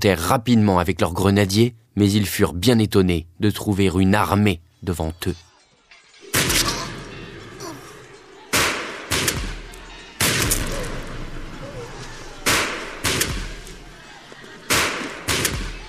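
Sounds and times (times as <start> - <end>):
speech: 0.0 - 5.5
laughter: 5.4 - 15.8
artillery fire: 8.5 - 11.6, 12.3 - 13.7, 14.7 - 15.8.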